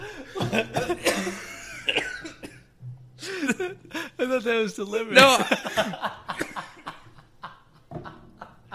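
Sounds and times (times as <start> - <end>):
laughter: 0.0 - 2.0, 5.1 - 8.7
harsh raspy coughing: 0.4 - 2.7
speech: 0.5 - 1.1, 4.4 - 6.2.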